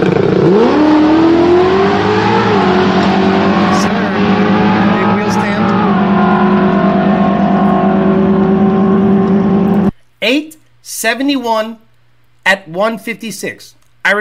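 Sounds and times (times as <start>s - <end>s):
supercharged Ford Racing Illuminator engine drag car run with Lund tuning in an S197: 0.0s - 9.9s
speech: 11.0s - 14.1s.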